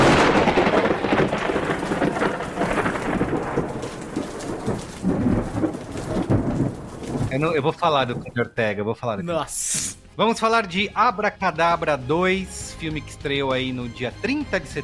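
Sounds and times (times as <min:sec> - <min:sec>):
heavy rain pouring: 0:00.0 - 0:08.2
deep thunder rumbling: 0:00.0 - 0:08.3
speech: 0:07.4 - 0:14.8.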